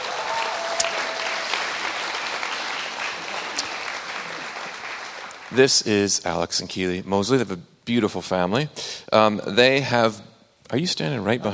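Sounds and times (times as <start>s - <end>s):
audience applause: 0.0s - 5.9s
speech: 5.5s - 11.5s.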